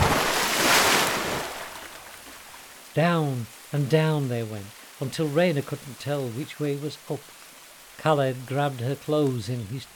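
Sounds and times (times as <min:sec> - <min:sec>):
loud splash of two people hitting ocean water after jumping from a ship's rail: 0:00.0 - 0:01.8
churning ocean surf: 0:00.0 - 0:02.0
speech: 0:03.0 - 0:07.4, 0:08.0 - 0:09.9.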